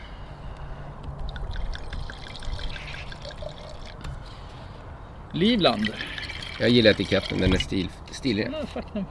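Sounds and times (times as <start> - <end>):
Stellenbosch wine from South Africa pouring into a glass: 1.3 - 4.0, 5.7 - 7.7
speech: 5.4 - 9.1.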